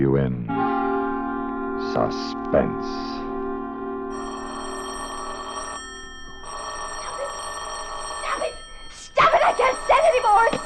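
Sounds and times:
speech: 0:00.0 - 0:00.6, 0:01.8 - 0:03.3
telephone bell ringing: 0:04.1 - 0:10.6.

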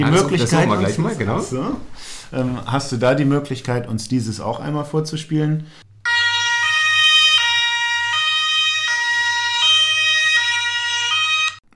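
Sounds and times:
speech: 0:00.0 - 0:05.8
emergency vehicle electric horn siren: 0:06.0 - 0:11.6.

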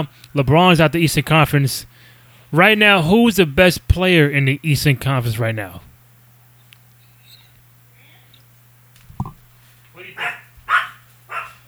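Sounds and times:
speech: 0:00.0 - 0:01.9, 0:02.5 - 0:05.9
steady low electrical hum: 0:00.0 - 0:11.6
guard dog barking: 0:10.0 - 0:11.6.

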